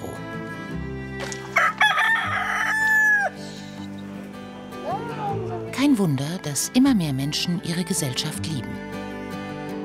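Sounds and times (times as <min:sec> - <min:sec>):
rooster crowing: 0:01.6 - 0:03.4
speech: 0:05.8 - 0:09.0.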